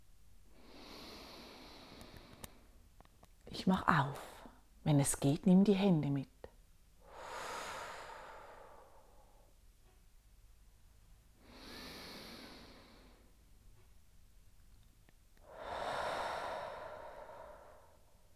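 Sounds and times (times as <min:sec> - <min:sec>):
deep belly breathing in and out: 0:00.5 - 0:02.8, 0:07.0 - 0:09.5, 0:11.4 - 0:13.4, 0:15.4 - 0:18.3
speech: 0:03.6 - 0:06.3.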